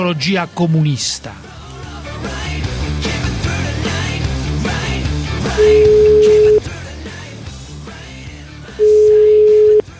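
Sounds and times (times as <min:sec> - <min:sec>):
speech: 0:00.0 - 0:01.5, 0:05.6 - 0:06.4
continuous bed of music: 0:00.0 - 0:09.9
telephone ringback tone as a call is placed: 0:05.6 - 0:06.6, 0:08.8 - 0:09.8.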